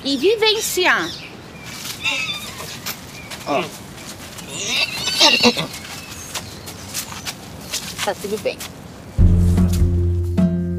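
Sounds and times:
speech: 0.0s - 1.3s, 2.1s - 2.7s, 3.4s - 3.8s, 4.6s - 5.8s, 8.0s - 8.8s
horse whinnying in a shrill wavering burst: 2.0s - 2.8s, 4.5s - 5.8s
soft scattered horse hoof thuds and shuffling on the ground: 5.8s - 10.4s.

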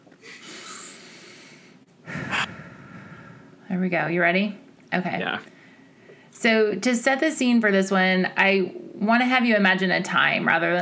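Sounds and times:
person taking a slow deep grounding breath: 0.2s - 3.6s
speech: 3.7s - 5.5s, 6.4s - 10.7s.

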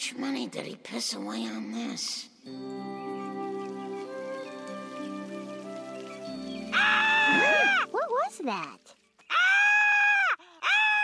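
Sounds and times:
speech: 0.1s - 3.4s, 8.4s - 9.0s
caterpillar screaming sound effect: 6.7s - 8.4s, 9.3s - 11.0s.

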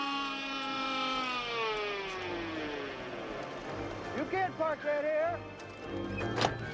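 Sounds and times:
siren of a movie ghost-hunting car wailing: 0.0s - 3.8s
speech: 4.2s - 6.7s.

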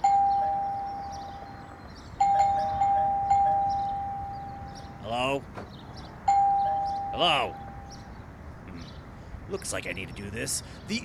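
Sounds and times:
electronic doorbell ringing: 0.0s - 1.6s, 2.2s - 5.1s, 6.3s - 8.0s
speech: 9.5s - 11.0s.

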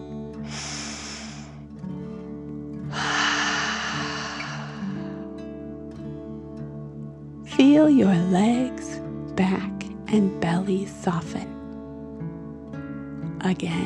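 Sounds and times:
deep breath in through the nose and out through the mouth: 0.4s - 1.7s, 2.8s - 5.3s
speech: 7.6s - 11.6s, 13.4s - 13.8s.

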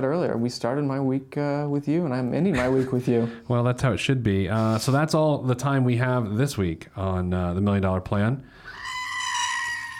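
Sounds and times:
speech: 0.0s - 8.7s
screaming goat sound effect: 8.7s - 9.9s.

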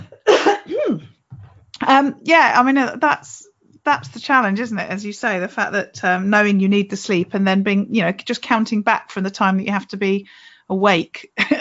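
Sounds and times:
harsh cough trailing into a throaty noise: 0.0s - 1.5s
speech: 1.9s - 11.6s.

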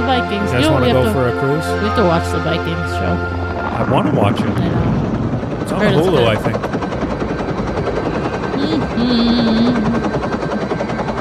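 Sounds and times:
tonal whine: 0.0s - 11.1s
speech: 0.1s - 5.0s, 5.6s - 6.8s, 8.6s - 10.3s
laughter: 0.3s - 1.6s, 3.8s - 4.6s, 5.7s - 6.6s
helicopter rotor thrum: 4.8s - 11.1s.

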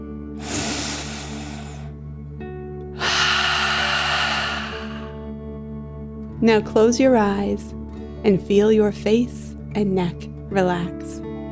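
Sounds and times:
deep breath in and out during a guided relaxation exercise: 0.4s - 2.0s, 3.0s - 5.3s
speech: 6.4s - 11.2s.

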